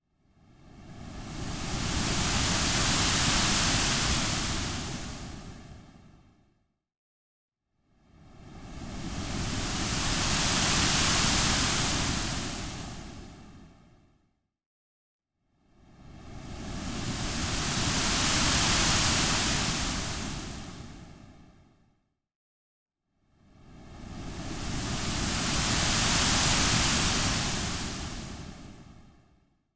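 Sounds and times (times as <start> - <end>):
waves on shore: 1.3 - 5.7, 9.0 - 13.4, 16.7 - 21.2, 24.2 - 29.0.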